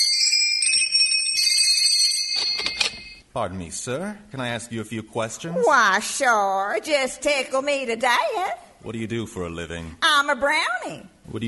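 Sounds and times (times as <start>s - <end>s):
doorbell ringing at workshop door: 0.0s - 3.2s
speech: 3.4s - 11.4s.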